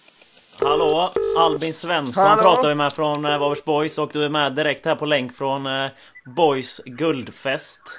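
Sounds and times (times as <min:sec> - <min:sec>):
telephone keypad tones: 0:00.6 - 0:01.6
speech: 0:01.0 - 0:07.9.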